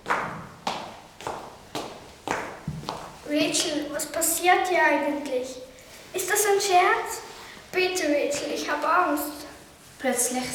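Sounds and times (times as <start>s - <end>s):
hard resonant footsteps approaching: 0.0s - 3.7s
speech: 3.3s - 9.4s, 10.0s - 10.5s.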